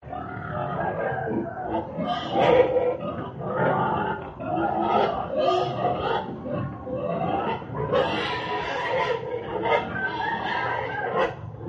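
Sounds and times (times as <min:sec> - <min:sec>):
pig in mud giving a harsh drawn-out rasping call: 0:00.1 - 0:11.6.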